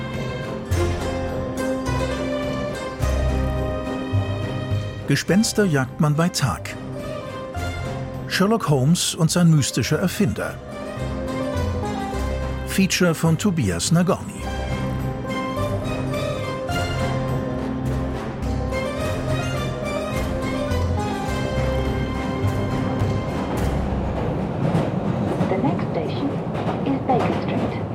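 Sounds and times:
metro train passing in an underground station: 0:00.0 - 0:27.9
speech: 0:05.1 - 0:06.8, 0:08.3 - 0:11.1, 0:12.8 - 0:14.6
station chatter: 0:05.1 - 0:15.5, 0:19.7 - 0:27.9.

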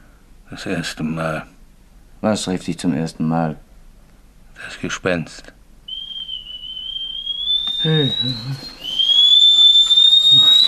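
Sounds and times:
speech: 0:00.5 - 0:01.6, 0:02.2 - 0:03.7, 0:04.6 - 0:05.6, 0:07.8 - 0:08.8
kettle whistling as coffee water boils: 0:05.9 - 0:10.6.

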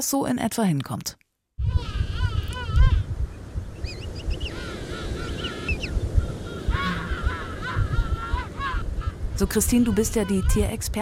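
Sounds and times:
speech: 0:00.0 - 0:01.9, 0:09.4 - 0:10.9
dense colony of king penguins calling: 0:01.6 - 0:03.1, 0:04.2 - 0:10.9
constant low rumble of wind or surf: 0:01.6 - 0:10.9.

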